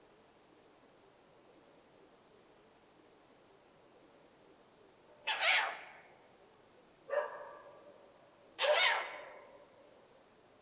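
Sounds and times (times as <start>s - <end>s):
quiet background hiss: 0.0s - 10.5s
owl giving a short tonal nasal call: 5.2s - 6.1s, 8.6s - 9.5s
owl giving harsh hissing screeches: 5.3s - 6.0s, 8.6s - 9.4s.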